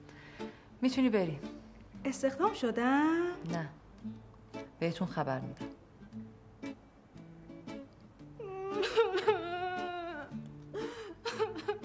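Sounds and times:
speech: 0.8s - 4.2s, 4.8s - 5.7s
person crying with wail and whimpering sobs: 8.4s - 11.8s.

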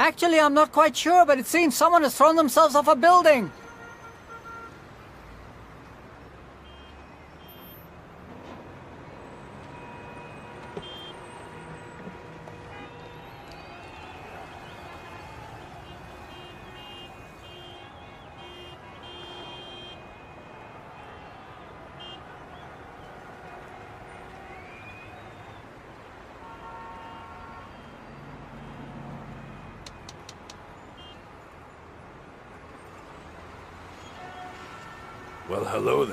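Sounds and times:
steady rumble of engines in congested street traffic: 0.0s - 36.1s
speech: 0.1s - 3.6s, 35.6s - 36.1s
car horns honking in a traffic jam: 3.0s - 4.9s, 6.6s - 7.8s, 9.5s - 21.2s, 21.9s - 22.6s, 26.2s - 28.8s, 29.5s - 31.3s, 34.0s - 36.1s.

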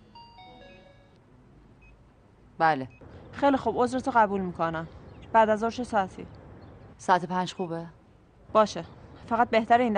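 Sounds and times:
phone ringtone of chiming electronic notes stepping down in pitch: 0.0s - 1.2s
speech: 2.6s - 6.4s, 7.0s - 9.9s.

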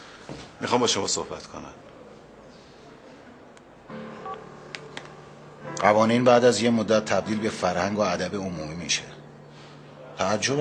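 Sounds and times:
speech: 0.3s - 1.9s, 5.8s - 9.2s, 10.2s - 10.5s
electronic beep from a mobile phone keypad in a courthouse: 4.2s - 5.0s
soft clicks and taps in a courthouse: 4.7s - 5.2s.

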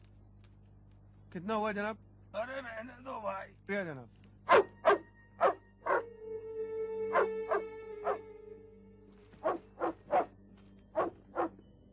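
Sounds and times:
speech: 1.3s - 4.6s
dog barking: 4.5s - 6.1s, 7.1s - 8.2s, 9.4s - 11.6s.

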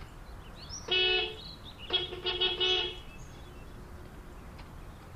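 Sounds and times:
car horn honking: 0.9s - 3.1s.

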